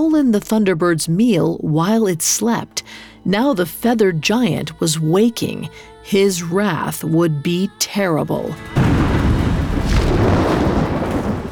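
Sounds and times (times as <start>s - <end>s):
speech: 0.0s - 8.9s
loud crash of thunder with sustained rumble: 8.8s - 11.5s.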